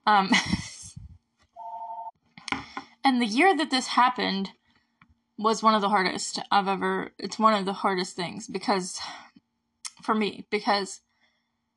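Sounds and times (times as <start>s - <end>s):
speech: 0.0s - 0.6s, 3.1s - 4.6s, 5.4s - 9.3s, 10.0s - 11.0s
electronic phone ring tone: 1.6s - 2.1s.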